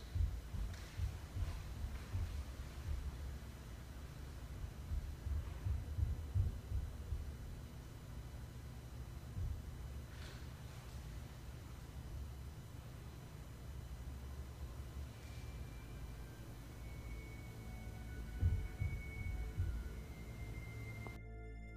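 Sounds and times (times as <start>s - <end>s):
heavy footsteps on a wooden floor upstairs: 0.0s - 7.6s, 9.3s - 11.1s, 18.4s - 19.8s
constant low hum: 0.0s - 21.7s.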